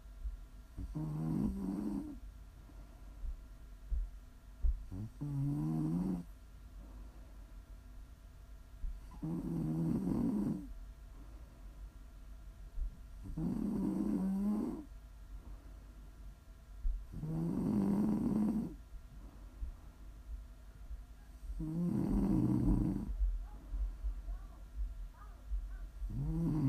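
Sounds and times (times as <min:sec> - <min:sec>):
quiet breathing: 0:00.0 - 0:08.1, 0:08.7 - 0:26.6
faint constant hum: 0:00.0 - 0:26.6
person snoring with rumbling throaty snores: 0:00.8 - 0:02.2, 0:04.9 - 0:06.3, 0:09.1 - 0:10.7, 0:13.3 - 0:14.9, 0:17.2 - 0:18.8, 0:21.6 - 0:23.1, 0:26.1 - 0:26.6.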